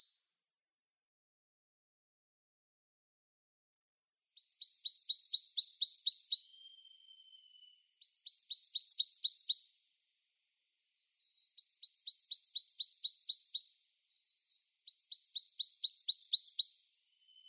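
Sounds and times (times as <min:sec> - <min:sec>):
Coal Tit song of fast thin repeated syllables: 0:04.3 - 0:09.8, 0:10.9 - 0:17.4.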